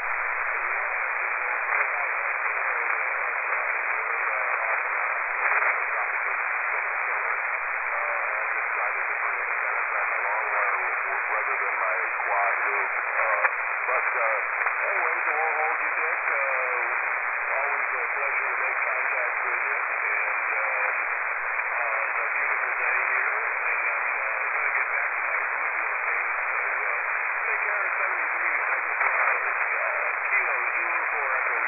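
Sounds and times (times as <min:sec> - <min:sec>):
amateur radio static: 0:00.0 - 0:31.6.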